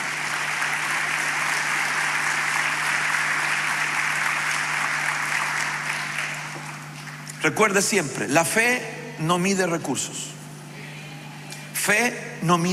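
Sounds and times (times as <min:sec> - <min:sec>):
crowd applauding: 0:00.0 - 0:07.3
speech: 0:07.4 - 0:10.4, 0:11.9 - 0:12.7.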